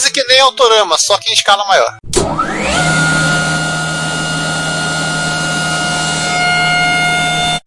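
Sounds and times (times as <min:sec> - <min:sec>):
speech: 0:00.2 - 0:02.9
loud rushing roar: 0:02.2 - 0:07.6
Formula E electric race car motor whine: 0:02.3 - 0:07.6.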